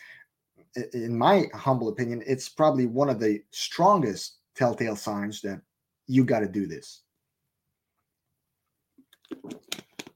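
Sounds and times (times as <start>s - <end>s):
speech: 0.7s - 7.0s
wet slurping and swallowing of a sip of water: 9.0s - 10.1s.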